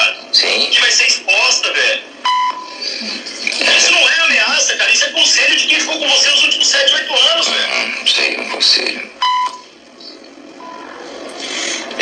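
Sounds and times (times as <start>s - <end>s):
people talking: 0.0s - 2.1s, 2.7s - 9.2s, 11.5s - 12.0s
censor bleep hiding a name: 2.2s - 2.8s, 9.2s - 9.7s, 10.6s - 10.9s.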